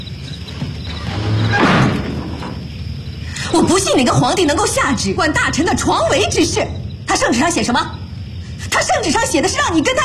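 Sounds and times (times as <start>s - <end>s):
hiss: 0.0s - 10.0s
household door sliding shut with thump: 0.9s - 2.6s
speech: 3.6s - 8.0s, 8.7s - 10.0s.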